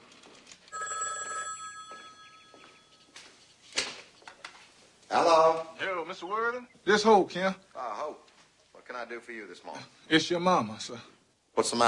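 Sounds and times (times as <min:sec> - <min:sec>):
telephone ringing in a house hallway: 0:00.7 - 0:03.2
speech: 0:05.1 - 0:08.2, 0:08.9 - 0:11.8.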